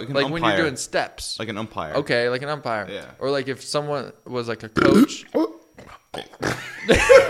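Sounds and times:
speech: 0.0s - 5.5s, 6.1s - 7.2s
croaky burp: 4.8s - 7.0s
laughter: 6.5s - 7.2s.

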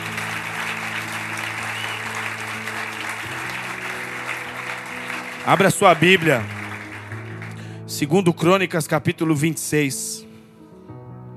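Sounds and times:
audience applauding loudly: 0.0s - 7.8s
sustained keyboard chords: 0.0s - 9.5s
speech: 5.5s - 6.6s, 8.0s - 10.2s.

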